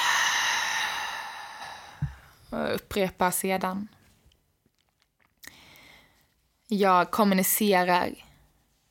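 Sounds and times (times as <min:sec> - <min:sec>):
long exhale during a guided throat chakra meditation: 0:00.0 - 0:02.4
speech: 0:02.5 - 0:04.0, 0:06.7 - 0:08.3.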